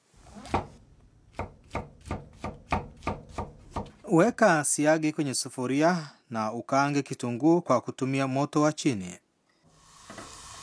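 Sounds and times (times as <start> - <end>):
knife slicing washed mushroom caps into thin slices: 0.2 - 4.1
speech: 4.1 - 9.2.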